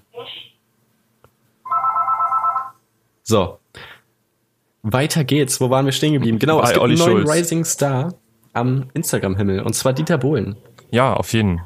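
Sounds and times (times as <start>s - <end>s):
telephone with trilling electronic ring: 1.6s - 2.8s
speech: 3.3s - 4.0s, 4.8s - 11.6s.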